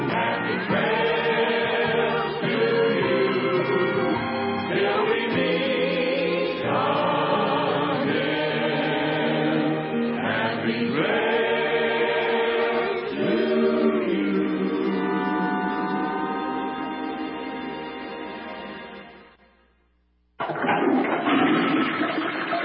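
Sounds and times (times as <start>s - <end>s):
tuneful melody: 0.0s - 19.6s
loud toilet flush with rushing water: 20.4s - 22.6s.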